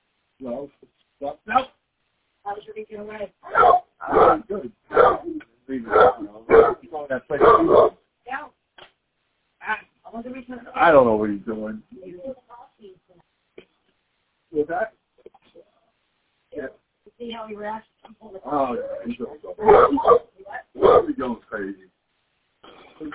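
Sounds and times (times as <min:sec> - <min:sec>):
speech: 0:00.4 - 0:01.8, 0:02.5 - 0:08.5, 0:09.7 - 0:13.3, 0:14.5 - 0:15.0, 0:16.6 - 0:21.9
dog barking at a person: 0:03.4 - 0:08.0, 0:18.6 - 0:21.4.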